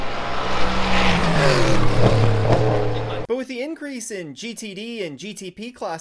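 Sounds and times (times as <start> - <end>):
LMP3 prototype race car engine roaring as the car passes by: 0.0 - 3.3
speech: 3.4 - 5.9.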